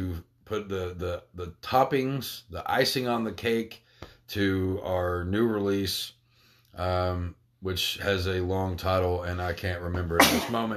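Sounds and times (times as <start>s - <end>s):
speech: 0.2s - 6.2s, 6.8s - 10.7s
loud sharp sneeze: 10.2s - 10.6s.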